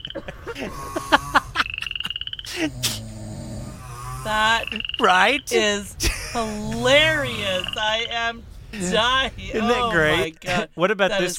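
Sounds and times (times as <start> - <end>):
laughter: 0.0 - 3.0, 5.5 - 7.8
chorus of frogs croaking with trills and chirping calls: 0.0 - 8.3
speech: 0.6 - 1.0, 2.6 - 3.0, 4.2 - 11.3.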